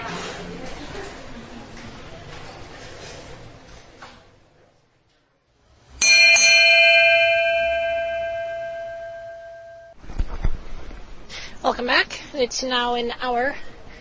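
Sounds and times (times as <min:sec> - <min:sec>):
bell ringing: 0:06.0 - 0:10.0
speech: 0:11.8 - 0:13.7.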